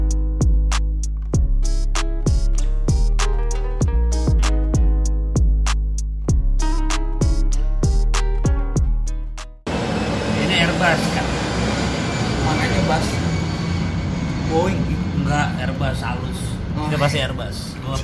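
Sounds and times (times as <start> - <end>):
punchy music beats: 0.0 - 9.7
Airbus airliner passing overhead: 9.7 - 17.8.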